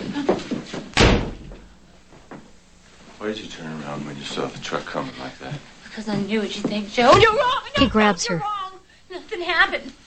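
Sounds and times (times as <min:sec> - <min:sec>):
bedroom door slamming shut: 0:01.0 - 0:01.7
speech: 0:03.2 - 0:08.6, 0:09.4 - 0:10.0.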